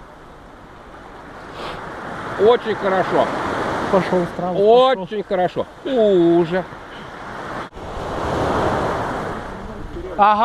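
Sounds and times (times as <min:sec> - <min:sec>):
sea waves and surf roaring: 0:00.0 - 0:10.4
speech: 0:02.4 - 0:06.8, 0:10.2 - 0:10.4.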